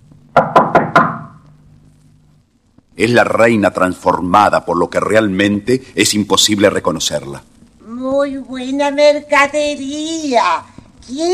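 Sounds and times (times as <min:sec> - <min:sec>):
old woman knocking on the door of a small cottage: 0:00.3 - 0:01.4
speech: 0:03.0 - 0:11.3.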